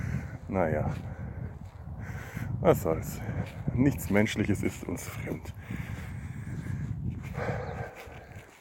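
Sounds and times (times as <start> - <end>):
heavy rough panting: 0.0 - 0.4, 1.0 - 2.6, 5.5 - 8.5
speech: 0.5 - 1.1, 2.6 - 5.9.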